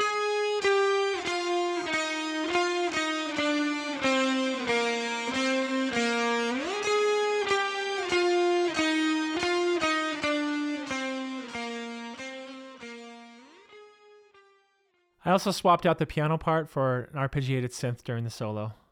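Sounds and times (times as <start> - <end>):
electric guitar played with an ebow: 0.0 - 15.0
speech: 15.3 - 18.8.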